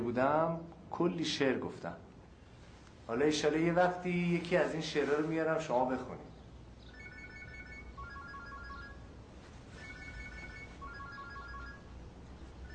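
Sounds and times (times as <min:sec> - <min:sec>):
speech: 0:00.0 - 0:02.1, 0:03.1 - 0:06.3
steady hiss: 0:00.0 - 0:12.7
mobile phone ringing with a repeating electronic melody: 0:06.9 - 0:12.0.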